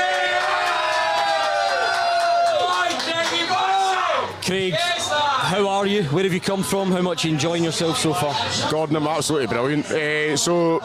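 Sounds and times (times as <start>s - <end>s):
live show audience cheering and whooping: 0.0s - 4.4s
speech: 5.5s - 10.8s.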